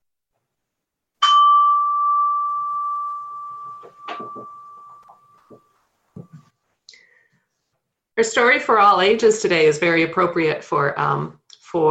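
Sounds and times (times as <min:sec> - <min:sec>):
meditation chime ringing: 0:01.2 - 0:06.5
soft shuffling: 0:02.9 - 0:08.0
speech: 0:04.2 - 0:04.6, 0:08.2 - 0:11.8.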